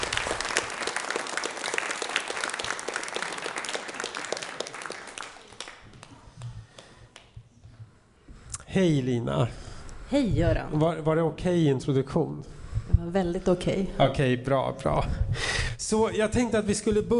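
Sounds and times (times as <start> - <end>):
crowd applauding: 0.0 - 7.3
speech: 8.7 - 17.1.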